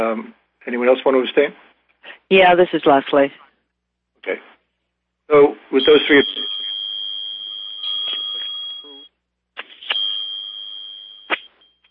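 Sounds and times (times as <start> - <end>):
speech: 0.0 - 3.4, 4.2 - 4.5, 5.3 - 6.6
high-pitched bells ringing on a phone line: 5.8 - 9.1, 9.8 - 11.8.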